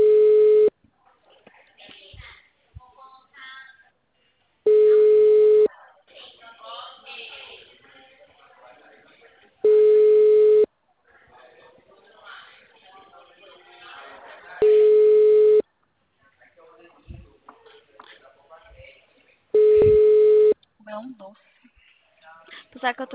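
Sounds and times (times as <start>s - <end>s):
telephone ringback tone for an outgoing call: 0.0s - 0.7s, 4.7s - 5.7s, 9.6s - 10.7s, 14.6s - 15.6s, 19.6s - 20.6s.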